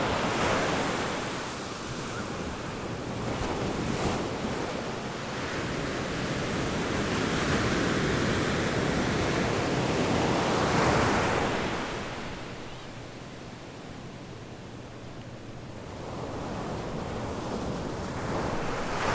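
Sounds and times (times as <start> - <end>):
waves crashing on a sandy shore at Sonoma Coast beach: 0.0 - 19.1.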